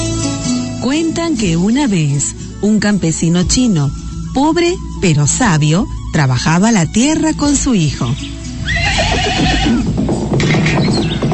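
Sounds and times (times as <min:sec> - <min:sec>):
speech: 0:00.8 - 0:10.1
horse whinnying: 0:08.6 - 0:10.0
horse hooves clip-clopping on hard ground: 0:08.6 - 0:11.3.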